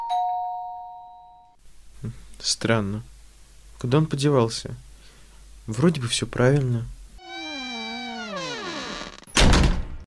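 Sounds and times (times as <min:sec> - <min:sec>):
speech: 0:02.0 - 0:03.1, 0:03.8 - 0:04.8, 0:05.7 - 0:07.0
apartment door scraping or bumping to a stop: 0:07.2 - 0:09.7
apartment door creaking open: 0:07.2 - 0:10.0.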